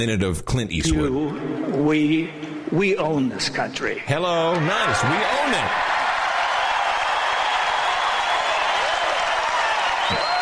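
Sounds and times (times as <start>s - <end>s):
speech: 0.0s - 6.0s
large audience applauding: 4.6s - 10.3s.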